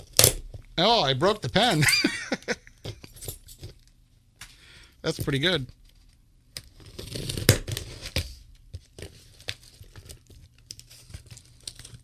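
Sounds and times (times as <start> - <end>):
speech: 0.8 - 2.3, 5.0 - 5.8
package of paper or plastic being torn open: 6.5 - 8.2, 8.8 - 12.0.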